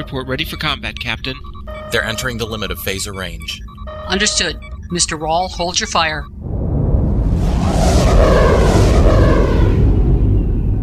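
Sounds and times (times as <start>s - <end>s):
speech: 0.0s - 6.4s
spaceships passing overhead during a space battle: 6.4s - 10.8s.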